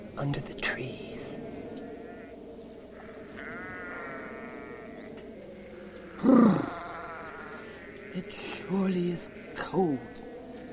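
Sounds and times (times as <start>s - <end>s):
speech: 0.2s - 1.2s
sheep bleating: 3.4s - 5.1s, 6.1s - 8.6s.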